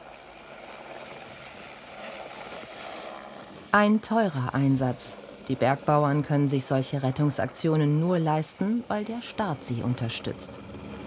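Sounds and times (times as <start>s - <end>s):
helicopter rotor whirring overhead: 3.0s - 11.0s
speech: 3.7s - 10.8s.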